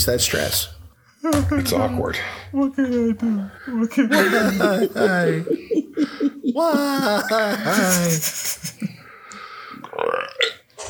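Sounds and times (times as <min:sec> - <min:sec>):
speech: 0:00.0 - 0:08.6
laughter: 0:03.9 - 0:09.1
loud drawn-out rumbling croaky belch: 0:09.9 - 0:10.8.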